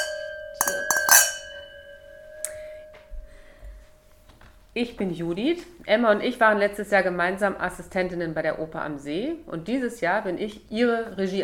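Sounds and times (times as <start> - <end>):
glasses clinking together in a toast: 0.0 - 3.1
speech: 4.8 - 11.4.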